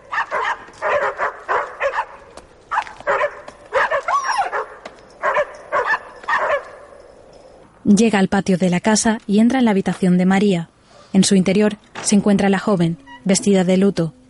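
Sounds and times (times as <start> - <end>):
higher whining yelp: 0.0 - 7.6
pack of dogs barking: 0.0 - 7.6
speech: 7.9 - 14.2.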